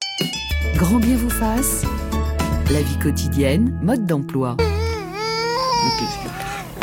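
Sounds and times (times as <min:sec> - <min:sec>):
speech: 0:00.8 - 0:02.0, 0:02.7 - 0:04.7
baby girl crying after being put back to bed: 0:04.6 - 0:06.8.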